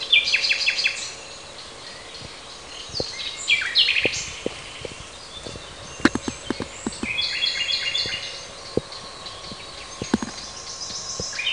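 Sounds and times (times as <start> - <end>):
common nightingale singing in a park in Parabiago: 0.0 - 11.5
clicks: 4.0 - 7.2, 8.0 - 11.4.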